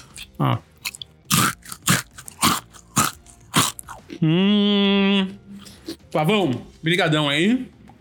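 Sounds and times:
crunchy bites and chewing of chocolate: 0:00.0 - 0:04.2
speech: 0:00.4 - 0:00.7, 0:04.2 - 0:05.5, 0:06.1 - 0:07.8.

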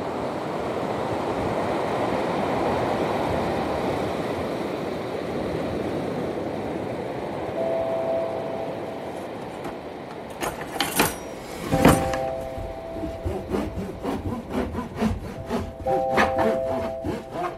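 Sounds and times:
ocean surf breaking on the shore: 0:00.0 - 0:17.5
serrated knife sawing through crusty homemade sourdough bread: 0:12.5 - 0:17.5.

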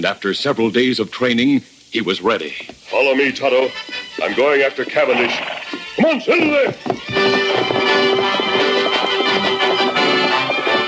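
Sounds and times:
speech: 0:00.0 - 0:08.4
horse galloping at full speed: 0:02.5 - 0:10.8.

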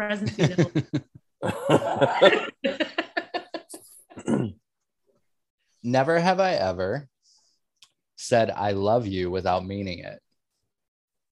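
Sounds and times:
speech: 0:00.0 - 0:02.8, 0:06.0 - 0:07.1, 0:08.3 - 0:10.2
laughter: 0:00.2 - 0:04.0
man coughing in another room: 0:00.4 - 0:02.8, 0:04.2 - 0:04.6.

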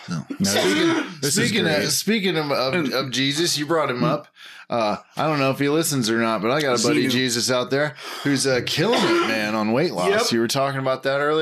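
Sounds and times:
harsh raspy throat clearing: 0:00.0 - 0:01.3
person coughing: 0:00.1 - 0:01.8, 0:08.8 - 0:09.5
speech: 0:00.1 - 0:11.4.

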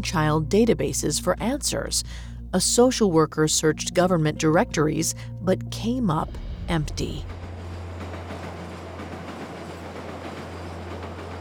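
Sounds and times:
speech: 0:00.0 - 0:07.4
train rolling along rails with deep rumble and hum: 0:06.3 - 0:11.3
train wheels clickety-clack over track joints: 0:07.7 - 0:11.3.

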